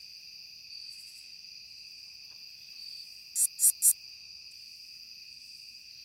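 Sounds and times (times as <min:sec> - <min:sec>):
continuous shrill insect tones: 0:00.7 - 0:05.6
curve-tailed bush katydid song: 0:03.4 - 0:04.0.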